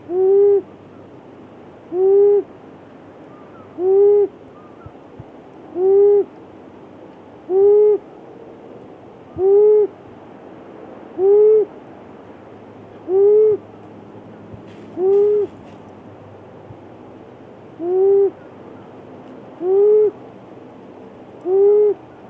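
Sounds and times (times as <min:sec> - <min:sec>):
long-eared owl Asio otus: 0:00.0 - 0:01.1, 0:01.8 - 0:02.5, 0:03.3 - 0:06.3, 0:07.4 - 0:08.1, 0:09.2 - 0:10.0, 0:11.1 - 0:11.7, 0:12.9 - 0:13.6, 0:14.7 - 0:15.7, 0:17.7 - 0:19.0, 0:19.6 - 0:20.2, 0:21.4 - 0:22.2.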